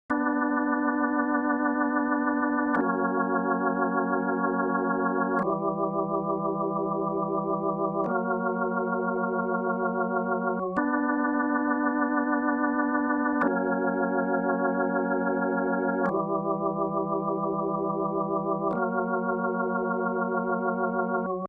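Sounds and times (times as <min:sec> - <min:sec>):
Hammond organ: 0:00.1 - 0:21.4.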